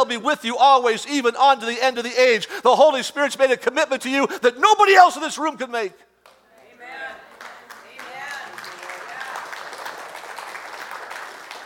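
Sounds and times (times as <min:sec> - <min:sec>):
speech: 0:00.0 - 0:06.1
crowd applauding: 0:07.3 - 0:11.6.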